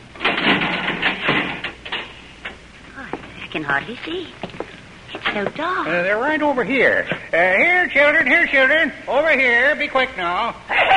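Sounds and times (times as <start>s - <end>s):
door pulled open with a rough scraping grind: 0.2s - 2.2s
speech: 3.6s - 4.4s, 5.3s - 10.9s.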